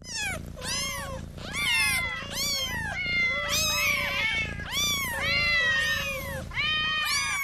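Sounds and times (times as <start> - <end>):
several cats meowing insistently: 0.0 - 7.4.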